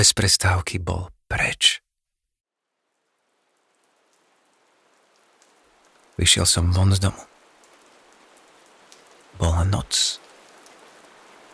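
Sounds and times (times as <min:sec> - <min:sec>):
speech: 0:00.0 - 0:01.8, 0:06.2 - 0:07.3, 0:09.4 - 0:10.3
heavy rain falling: 0:02.8 - 0:11.5.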